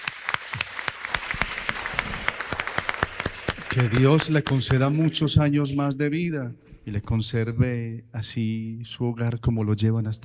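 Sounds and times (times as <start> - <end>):
audience applause for a birthday girl: 0.0 - 5.2
speech: 3.8 - 10.2.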